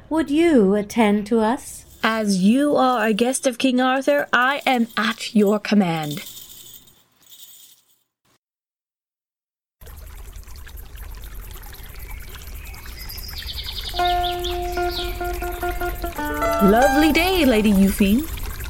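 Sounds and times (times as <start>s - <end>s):
speech: 0.1s - 6.4s, 14.9s - 18.4s
river water flowing: 11.6s - 18.6s
birds singing over river water: 12.1s - 17.7s.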